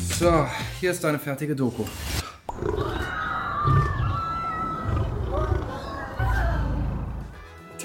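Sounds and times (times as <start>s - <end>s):
speech: 0.2s - 2.2s
lion roaring: 2.5s - 7.3s
people screaming and shouting: 2.6s - 7.2s.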